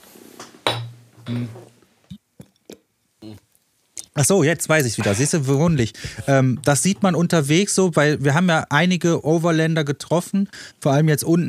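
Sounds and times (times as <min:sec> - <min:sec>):
glasses clinking in a toast: 0:00.7 - 0:01.5, 0:04.8 - 0:05.7
speech: 0:01.3 - 0:01.8, 0:04.2 - 0:11.4
brief vocal sounds: 0:03.2 - 0:03.4.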